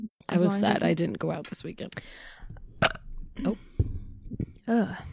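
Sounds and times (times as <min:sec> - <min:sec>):
speech: 0:00.4 - 0:02.4, 0:04.7 - 0:05.1
short gurgling belch: 0:02.8 - 0:03.3.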